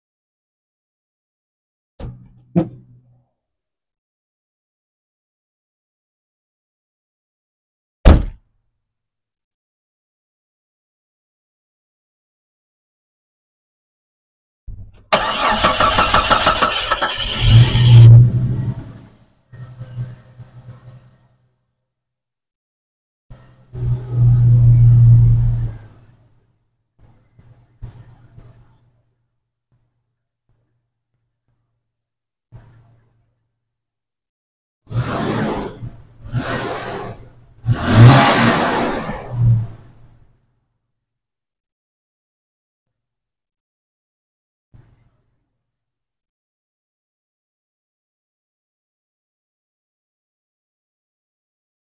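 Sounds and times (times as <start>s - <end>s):
Jeep: 2.0s - 3.5s, 14.7s - 22.0s, 23.3s - 30.7s, 32.5s - 33.6s, 34.9s - 40.8s.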